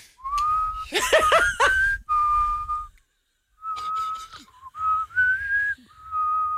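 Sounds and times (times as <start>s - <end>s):
person whistling through pursed lips: 0.2s - 3.0s, 3.6s - 6.5s
short burst of laughter: 0.9s - 1.9s.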